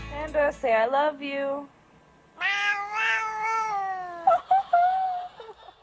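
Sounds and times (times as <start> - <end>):
speech: 0.4 - 1.8
cat giving long and short chirping meows: 2.4 - 4.3
laughter: 4.2 - 5.8.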